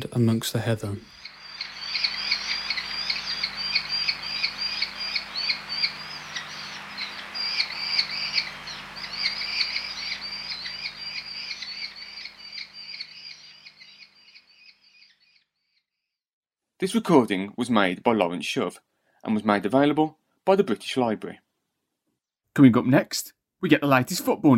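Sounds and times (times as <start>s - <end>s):
faint steady low hum: 0.0s - 14.0s
speech: 0.2s - 1.2s, 16.8s - 21.4s, 22.6s - 24.5s
merlin calling in high chattering bursts: 0.8s - 15.1s.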